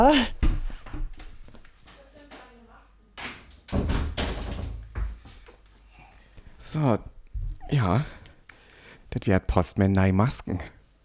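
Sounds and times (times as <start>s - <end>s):
speech: 0.1s - 0.4s, 6.7s - 8.2s, 9.1s - 10.8s
door opening and closing: 3.2s - 5.2s.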